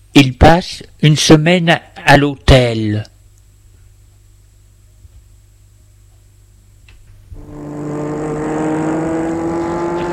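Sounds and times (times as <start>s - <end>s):
speech: 0.2s - 3.1s
car engine starting up and accelerating: 7.3s - 10.1s.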